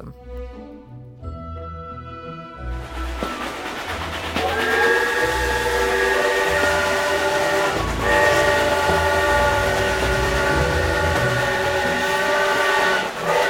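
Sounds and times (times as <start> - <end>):
train rumbling over tracks: 2.3 - 13.4
train horn blowing a long sustained chord: 4.4 - 13.4.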